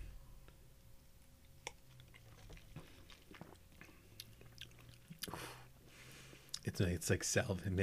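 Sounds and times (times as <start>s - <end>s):
sipping a mixed drink: 1.7s - 5.4s
brief airy slurp: 2.0s - 5.4s
speech: 6.8s - 7.8s.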